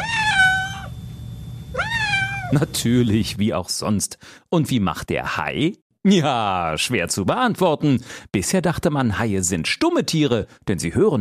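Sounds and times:
cat meowing: 0.0s - 1.0s, 1.7s - 2.6s
speech: 2.5s - 11.1s.

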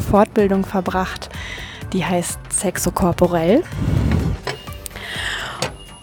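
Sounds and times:
high-speed train low rumble pulling out of station: 0.0s - 6.0s
speech: 0.1s - 4.1s
high-speed train mechanical clicks and knocks: 2.6s - 6.0s
high-speed train rising electric motor whine: 3.4s - 6.0s.

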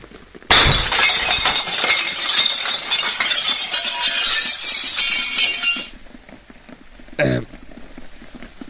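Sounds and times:
glass shards tinkling and clattering down: 0.5s - 6.0s
window pane smashed with a stone: 0.5s - 6.0s.

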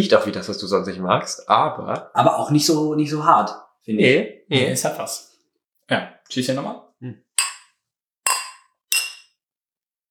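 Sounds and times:
speech: 0.0s - 5.3s, 5.9s - 7.2s
glasses clinking: 7.4s - 7.7s, 8.3s - 9.4s.

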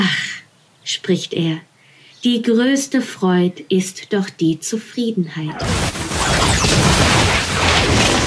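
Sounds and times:
speech: 0.9s - 6.0s
gunpowder-packed tobacco pipe exploding: 5.6s - 8.2s.

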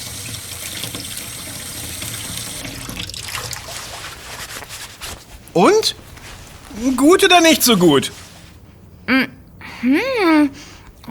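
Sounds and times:
running tap water splashing into a sink while rinsing an edible leaf: 0.0s - 4.1s
speech: 5.6s - 6.0s, 6.8s - 8.2s.

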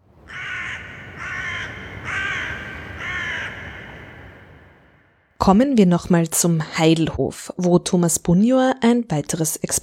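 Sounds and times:
crow cawing: 0.3s - 5.3s
speech: 5.5s - 9.8s.

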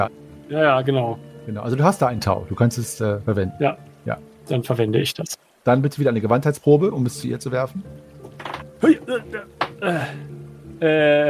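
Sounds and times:
speech: 0.0s - 11.2s
die clattering across a hard surface: 8.2s - 8.7s.

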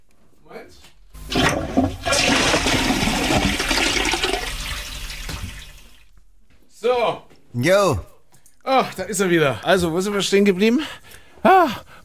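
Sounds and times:
toilet flushing: 1.2s - 6.1s
speech: 7.1s - 8.1s, 8.7s - 11.9s.

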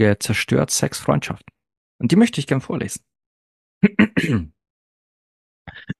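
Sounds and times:
speech: 0.0s - 3.1s, 3.8s - 4.6s
soft coughing gasps: 3.8s - 4.5s
loud throat clearing: 3.8s - 4.6s.

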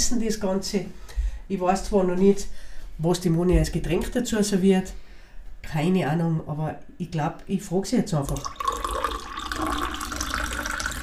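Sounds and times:
speech: 0.1s - 8.7s
white Welschriesling wine poured from high up into a glass: 8.3s - 11.0s.

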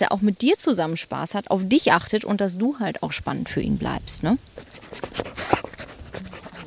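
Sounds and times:
speech: 0.0s - 5.6s
hunting dog panting while searching: 4.6s - 6.6s.

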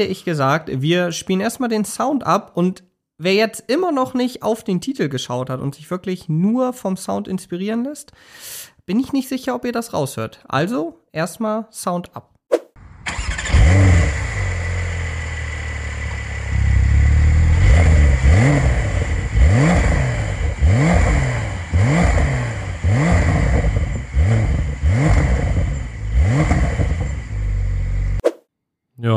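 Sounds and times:
speech: 0.0s - 12.3s
car engine revving against a soft limiter: 13.2s - 28.2s.

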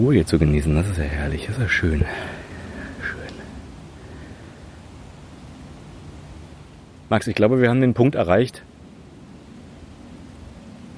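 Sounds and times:
speech: 0.0s - 2.4s, 7.1s - 8.7s
distant airplane droning overhead: 0.0s - 10.9s.

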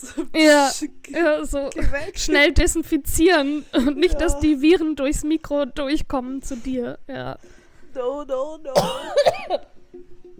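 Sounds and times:
speech: 0.0s - 9.8s
raspy human cough from a painful chest cough: 8.8s - 9.7s.

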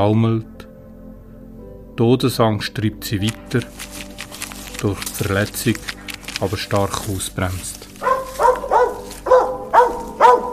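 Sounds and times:
speech: 0.0s - 0.5s, 2.0s - 4.1s, 4.8s - 7.9s
dog barking: 8.0s - 10.5s.

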